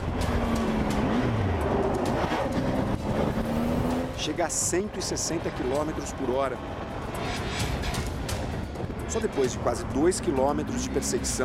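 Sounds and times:
motorcycle speeding the wrong way against highway traffic: 0:00.0 - 0:04.3
dense steady highway traffic roaring on the Fernão Dias highway in São Paulo, Brazil: 0:00.0 - 0:11.4
heavier rumbling from passing trucks on the highway: 0:00.0 - 0:11.4
speech: 0:04.2 - 0:06.8, 0:09.1 - 0:11.4.

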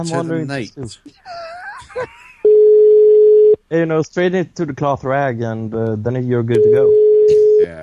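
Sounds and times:
speech: 0:00.0 - 0:02.2, 0:03.7 - 0:07.8
telephone line tone as a call to Sweden connects: 0:02.5 - 0:03.6, 0:06.6 - 0:07.6.

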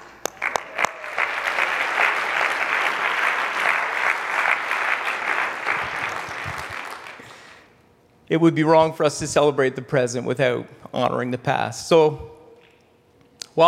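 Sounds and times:
room full of people applauding: 0:00.0 - 0:07.6
speech: 0:08.3 - 0:12.3.

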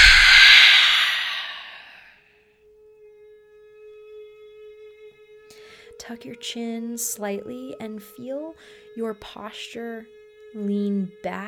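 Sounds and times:
breathy open-mouth exhale during a breathing and posture exercise: 0:00.0 - 0:02.0
speech: 0:06.1 - 0:11.4.

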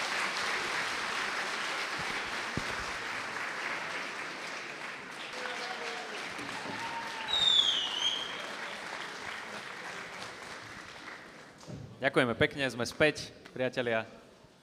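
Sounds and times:
audience applause: 0:00.0 - 0:11.6
brief audience cheers: 0:05.2 - 0:08.9
whistles from audience: 0:07.2 - 0:08.5
speech: 0:12.0 - 0:14.2.

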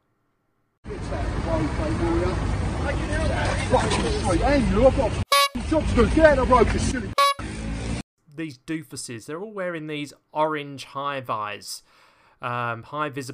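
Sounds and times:
busy traffic noise: 0:00.9 - 0:08.0
speech: 0:01.6 - 0:07.2, 0:08.4 - 0:13.3
short electronic censor bleeps covering swearing in a video: 0:05.3 - 0:05.6, 0:07.2 - 0:07.4.

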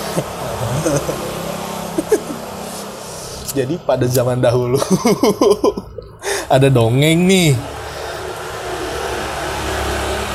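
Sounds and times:
laughter: 0:00.0 - 0:02.8, 0:04.6 - 0:06.5
motorcycle engine roaring by: 0:00.0 - 0:03.7, 0:07.2 - 0:10.3
speech: 0:00.2 - 0:01.4, 0:02.0 - 0:02.2, 0:03.6 - 0:05.9, 0:06.5 - 0:07.7.

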